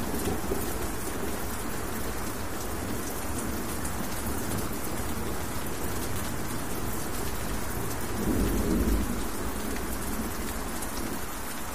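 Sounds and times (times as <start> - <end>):
rain falling on a castle: 0.0 - 11.7
deep rumble of thunder: 7.6 - 11.1.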